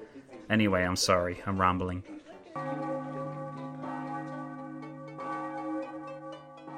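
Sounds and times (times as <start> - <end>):
speech: 0.5 - 2.9
church bells ringing: 2.6 - 6.7.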